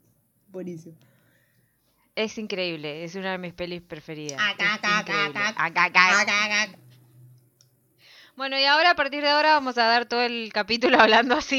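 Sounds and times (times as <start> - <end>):
speech: 0.5 - 1.2, 2.2 - 6.8, 8.4 - 11.5
laughter: 4.4 - 6.4
voice imitating Martian alien ack-ack chatter: 4.4 - 6.8.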